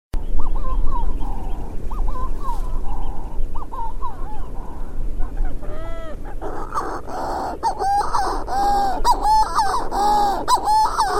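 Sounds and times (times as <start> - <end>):
steady low rumble: 0.2 - 11.1
bird calling with nasal honking notes: 0.5 - 11.1.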